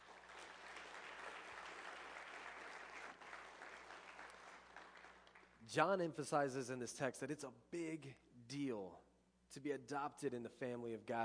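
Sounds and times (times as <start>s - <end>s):
audience applause: 0.0s - 5.6s
speech: 5.7s - 11.2s.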